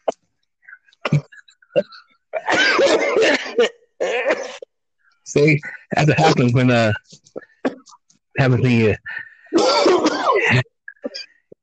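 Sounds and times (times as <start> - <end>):
person coughing: 1.0 - 4.7, 9.5 - 11.4
speech: 1.8 - 2.0, 3.6 - 3.8, 5.3 - 7.2, 8.4 - 9.1, 10.4 - 10.7.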